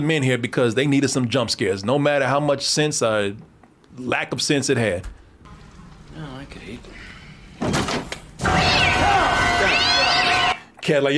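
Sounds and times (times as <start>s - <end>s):
speech: 0.0s - 5.2s, 6.2s - 7.0s, 10.9s - 11.1s
cat meowing in a horror video game: 8.4s - 10.6s.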